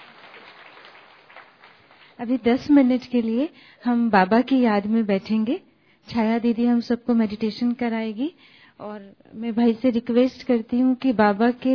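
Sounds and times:
audience applauding: 0.0s - 2.2s
speech: 2.2s - 11.7s.

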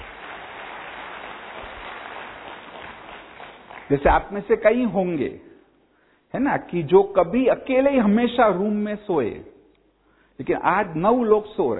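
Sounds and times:
audience clapping at a speaker's request: 0.0s - 4.3s
speech: 3.9s - 5.5s, 6.3s - 9.5s, 10.4s - 11.7s.

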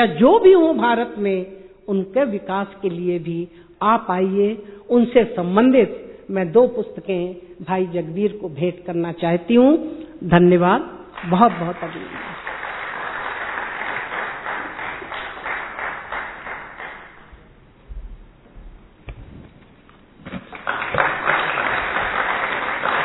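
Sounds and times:
speech: 0.0s - 12.4s
audience applause: 11.2s - 17.3s, 20.4s - 23.0s.

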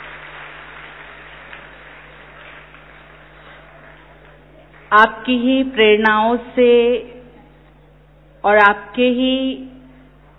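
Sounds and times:
crowd clapping to welcome a speaker: 0.0s - 5.0s
faint electrical hum: 0.0s - 10.3s
speech: 4.9s - 7.2s, 8.4s - 9.8s.

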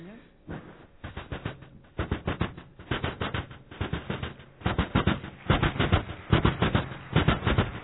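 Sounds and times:
train wheels clacking on rail track: 0.5s - 7.8s.

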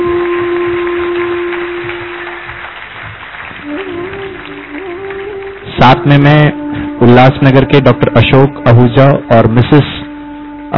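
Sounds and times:
large crowd applauding in a hall: 0.0s - 6.4s
speech: 6.0s - 10.0s.

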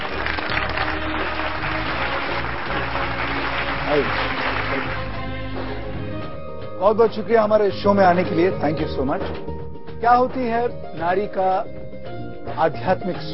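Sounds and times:
large audience applauding loudly: 0.0s - 5.2s
speech: 4.0s - 4.3s, 6.8s - 11.8s, 12.5s - 13.3s.

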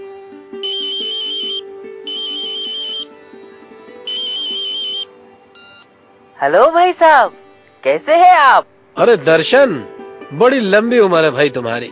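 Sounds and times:
soft music: 0.0s - 11.9s
telephone ringing on an outgoing call: 0.6s - 3.1s, 4.1s - 5.0s, 5.6s - 5.9s
speech: 6.4s - 11.9s.

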